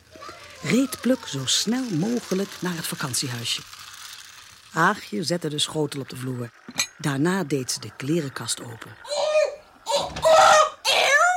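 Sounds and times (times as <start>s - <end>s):
speech: 0.6s - 3.8s, 4.7s - 9.2s
voice imitating a hen screeching in anger: 9.0s - 11.3s.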